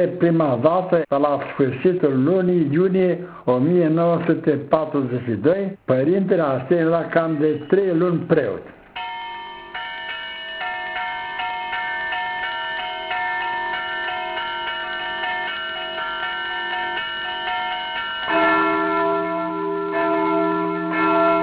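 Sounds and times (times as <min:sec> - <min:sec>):
speech: 0:00.0 - 0:08.8
monastery church bells ringing: 0:06.9 - 0:08.3, 0:09.0 - 0:21.4
deeper louder monastery bell ringing: 0:09.0 - 0:21.4.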